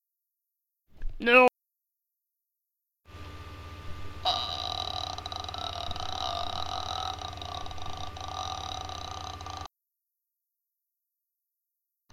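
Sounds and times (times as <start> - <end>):
speech: 1.2 - 1.5
person imitating a movie alien creature with a guttural rattling growl: 4.3 - 9.7.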